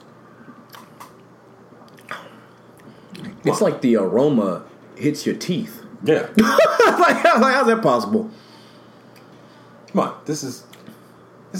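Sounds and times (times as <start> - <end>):
person sipping whiskey: 0.4 - 3.4
lip smacks: 0.5 - 3.4
speech: 3.4 - 8.4, 10.0 - 10.8
laughter: 6.4 - 7.7.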